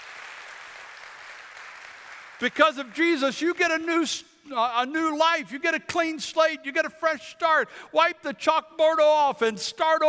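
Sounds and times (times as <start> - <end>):
crowd applauding with many hands clapping: 0.0 - 3.0
speech: 2.4 - 10.0.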